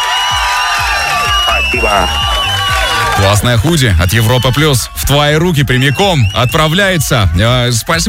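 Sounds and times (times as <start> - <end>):
crowd cheering and whooping on a radio morning show: 0.0 - 8.0
speech: 1.8 - 2.2, 3.2 - 8.0.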